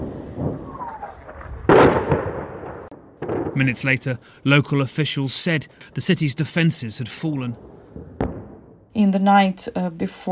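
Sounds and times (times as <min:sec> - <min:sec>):
rocket landing in a city street in Ukraine exploding: 0:00.0 - 0:04.2, 0:07.5 - 0:08.9
speech: 0:03.6 - 0:08.0, 0:09.0 - 0:10.3.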